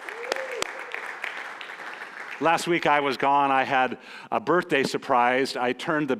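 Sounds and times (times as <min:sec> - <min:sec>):
audience applause: 0:00.0 - 0:03.2
speech: 0:02.4 - 0:06.1.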